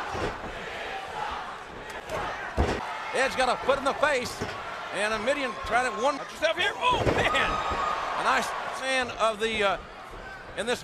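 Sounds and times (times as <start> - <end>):
large arena crowd at a wrestling match roaring and shouting: 0.0 - 10.8
speech: 3.2 - 9.9, 10.6 - 10.8.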